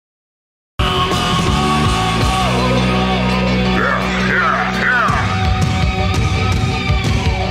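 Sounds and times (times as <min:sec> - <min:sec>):
rock band playing: 0:00.8 - 0:07.5
person shouting vocals: 0:03.7 - 0:05.4.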